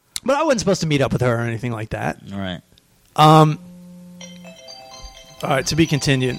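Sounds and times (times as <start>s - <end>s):
speech: 0.2s - 3.7s, 5.4s - 6.3s
loud buzzy electronic tone: 3.2s - 6.3s
steady quiet low hum: 3.3s - 5.4s.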